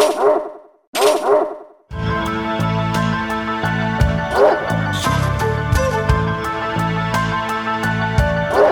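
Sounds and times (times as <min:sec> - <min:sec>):
thwacks: 0:00.0 - 0:01.5
sampled dog bark sound effect: 0:00.0 - 0:01.7, 0:04.3 - 0:04.7, 0:08.5 - 0:08.7
bright busy music with chiming notes: 0:01.9 - 0:08.7.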